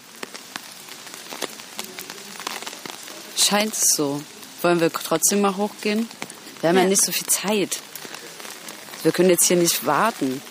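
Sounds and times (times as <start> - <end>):
steady rain pattering: 0.0 - 10.4
speech: 3.4 - 7.9, 9.0 - 10.4.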